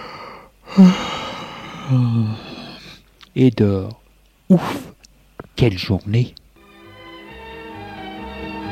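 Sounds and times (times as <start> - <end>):
person yawning: 0.0 - 3.0
speech: 0.8 - 1.1, 1.9 - 2.5, 3.4 - 4.8, 5.6 - 6.4.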